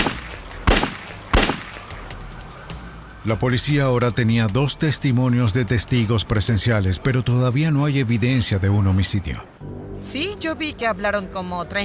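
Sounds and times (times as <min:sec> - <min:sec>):
loud sharp gunshots on a street: 0:00.0 - 0:02.1
speech: 0:03.2 - 0:11.8.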